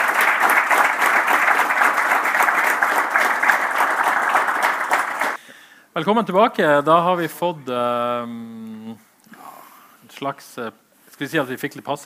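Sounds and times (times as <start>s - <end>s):
audience applause: 0.0s - 5.4s
speech: 6.0s - 8.6s, 10.2s - 12.0s.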